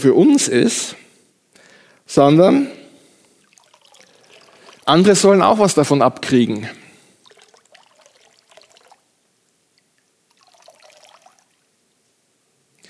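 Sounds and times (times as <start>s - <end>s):
speech: 0.0s - 1.0s, 2.1s - 2.8s, 4.8s - 6.8s
water squeezed from a sponge trickling and pattering: 3.2s - 5.8s, 7.1s - 11.8s.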